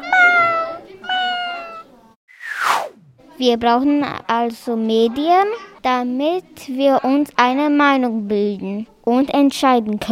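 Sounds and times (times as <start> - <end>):
cat meowing: 0.0 - 1.9
speech: 3.4 - 10.1.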